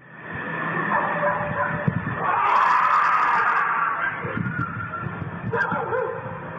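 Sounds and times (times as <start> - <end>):
busy noise: 0.0 - 6.5
dogs barking and yipping: 0.7 - 6.5
drawn-out wailing cry: 1.2 - 6.2.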